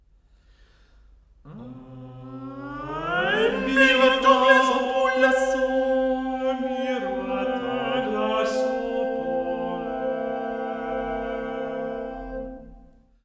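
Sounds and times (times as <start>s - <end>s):
vocal ensemble singing: 1.5s - 13.0s.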